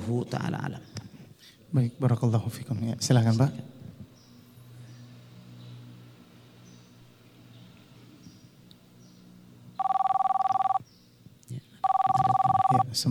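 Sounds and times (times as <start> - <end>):
speech: 0.0 - 3.8
telephone ringing with an incoming call: 9.8 - 10.8, 11.8 - 13.0.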